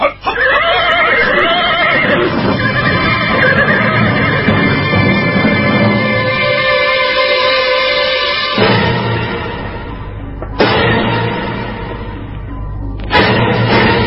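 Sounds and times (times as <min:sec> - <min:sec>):
horse whinnying loudly: 0:00.0 - 0:06.2
steady noise: 0:00.0 - 0:14.0.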